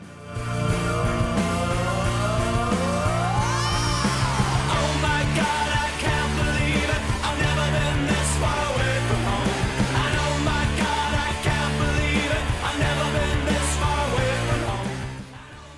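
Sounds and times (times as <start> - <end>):
driving distorted guitars: 0.0 - 15.7
full-band rock theme jingle for a segment: 0.0 - 15.7
pounding drums: 0.3 - 15.4
shouted whooping vocals: 2.1 - 5.0.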